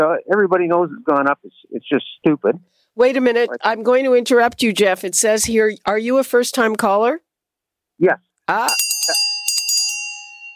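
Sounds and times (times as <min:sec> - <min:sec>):
speech: 0:00.0 - 0:07.3, 0:08.0 - 0:09.3
bright little bell struck: 0:08.5 - 0:10.5.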